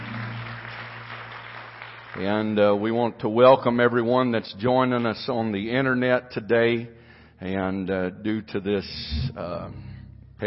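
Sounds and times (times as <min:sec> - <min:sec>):
congregation clapping: 0:00.0 - 0:03.0
low electrical hum: 0:00.0 - 0:03.0, 0:03.6 - 0:10.4
speech: 0:02.2 - 0:10.4.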